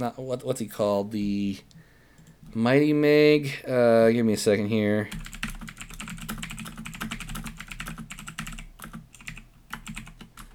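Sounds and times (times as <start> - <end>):
speech: 0.0 - 1.8, 2.5 - 5.4
low hum: 0.0 - 10.5
typing on a mechanical keyboard: 5.1 - 10.5.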